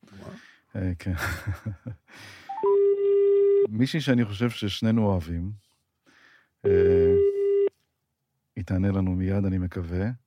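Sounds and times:
speech: 0.1s - 1.3s, 3.7s - 5.6s, 8.6s - 10.2s
electronic telephone tones as another call is connected: 2.5s - 3.7s, 6.6s - 7.7s.

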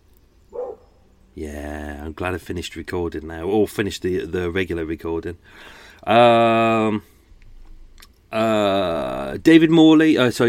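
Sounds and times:
quiet low hum: 0.0s - 10.4s
dog barking outside: 0.5s - 1.0s
speech: 1.4s - 7.1s, 8.3s - 10.4s.

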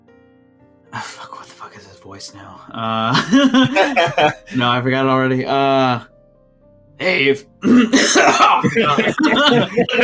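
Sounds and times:
speech: 1.0s - 6.1s, 7.0s - 10.0s
laughter: 3.1s - 4.6s, 7.9s - 10.0s
person coughing: 7.6s - 10.0s
raspy throat clearing and hacking: 7.6s - 10.0s.

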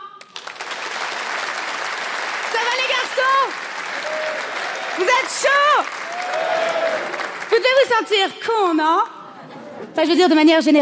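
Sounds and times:
crowd applause: 0.2s - 7.9s
speech: 5.0s - 9.1s, 10.0s - 10.8s.

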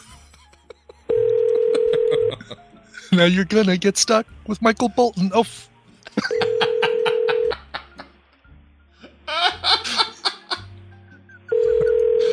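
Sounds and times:
people laughing and chuckling: 0.0s - 3.2s, 6.1s - 8.2s, 9.0s - 10.8s
electronic phone keypad tones of a number being dialed: 1.1s - 2.3s, 11.5s - 12.3s
speech: 3.2s - 5.7s.

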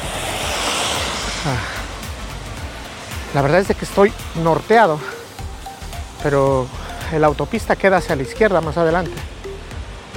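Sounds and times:
steady loud hiss of light rain outdoors: 0.0s - 10.1s
speech: 1.4s - 1.7s, 3.3s - 5.1s, 6.2s - 9.3s.

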